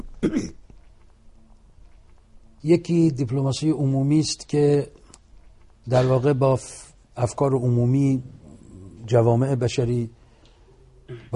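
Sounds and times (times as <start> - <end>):
sick person with a bad chest coughing: 0.0 - 0.6, 11.1 - 11.3
speech: 0.2 - 0.6, 2.6 - 5.0, 5.8 - 8.4, 9.0 - 10.2, 11.1 - 11.3.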